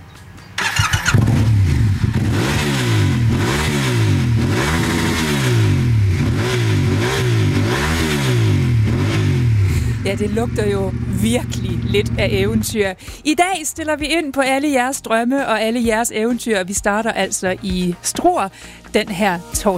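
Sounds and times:
Yamaha motorcycle engine starting and revving: 0.6s - 12.9s
speech: 10.1s - 19.7s.

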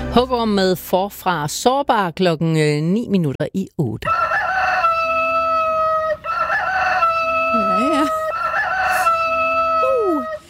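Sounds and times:
speech: 0.1s - 4.4s
rooster crowing: 4.1s - 10.4s.

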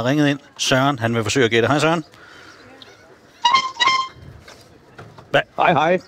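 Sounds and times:
speech: 0.0s - 2.2s, 5.3s - 6.0s
boat horn honking a tune: 3.4s - 4.3s.

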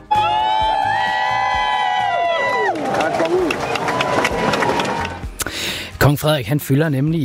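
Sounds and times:
large outdoor crowd cheering at palace square: 0.0s - 5.4s
speech: 6.1s - 7.2s.

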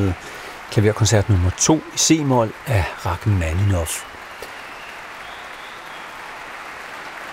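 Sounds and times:
speech: 0.0s - 4.1s
large audience applauding in concert hall: 0.0s - 7.3s.

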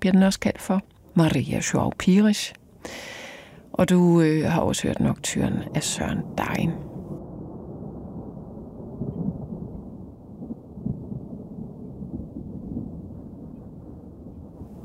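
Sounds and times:
speech: 0.0s - 3.2s, 3.8s - 6.9s
distant thunder rumbling: 3.5s - 14.8s.

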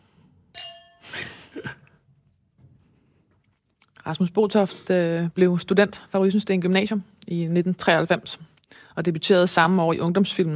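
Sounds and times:
glasses clinking in a toast: 0.5s - 1.3s
speech: 4.1s - 10.5s.

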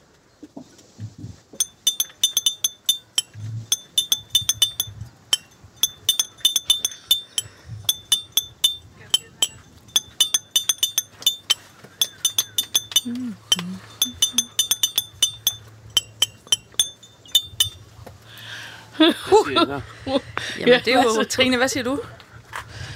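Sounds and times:
tune played by clinking champagne bottles on a beach: 1.6s - 17.9s
speech: 19.0s - 22.2s.

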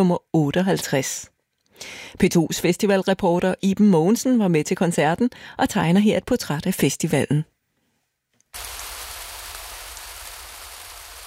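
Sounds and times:
speech: 0.0s - 7.5s, 8.5s - 8.8s
heavy rain pouring down outdoors: 8.6s - 11.2s.

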